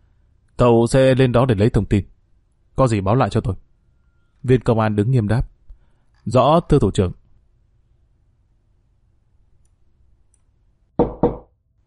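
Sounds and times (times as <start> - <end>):
speech: 0.6 - 2.1, 2.8 - 3.6, 4.4 - 5.5, 6.2 - 7.2
knocking on a door: 11.0 - 11.5.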